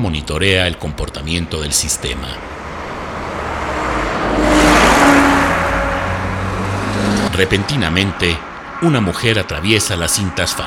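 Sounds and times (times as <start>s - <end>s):
speech: 0.0s - 2.6s, 7.4s - 10.6s
car driving past on an open road: 2.4s - 9.3s.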